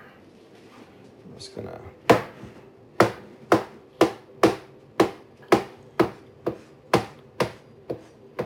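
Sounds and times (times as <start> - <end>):
speech: 1.4 - 2.2
knife chopping ingredients for a sauce on a cutting board: 3.0 - 8.4.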